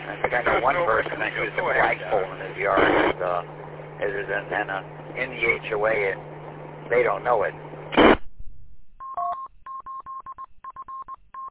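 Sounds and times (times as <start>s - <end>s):
speech: 0.3s - 6.3s, 6.9s - 8.1s
telephone tones from an incoming phone call: 9.0s - 11.4s.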